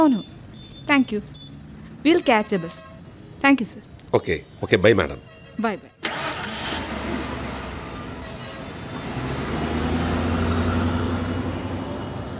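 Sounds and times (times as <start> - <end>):
speech: 0.0 - 1.4, 2.0 - 6.2
road noise: 0.0 - 12.3
police jeep engine rumble driving past: 6.1 - 12.3.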